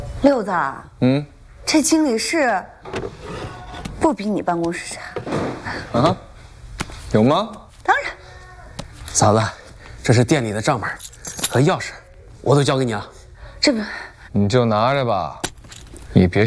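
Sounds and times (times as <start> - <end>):
speech: 0.2 - 6.3, 7.1 - 8.1, 9.2 - 15.4, 16.1 - 16.4
restaurant keys jangling as they are handed over: 10.8 - 11.8, 15.4 - 16.1
small metallic clinks: 10.9 - 11.7.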